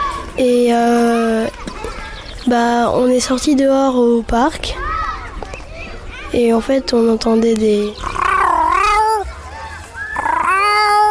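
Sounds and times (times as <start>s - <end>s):
speech: 0.4s - 1.6s, 2.5s - 4.8s, 6.3s - 8.2s
cat meowing outdoors in a park: 8.0s - 9.2s, 10.2s - 11.0s.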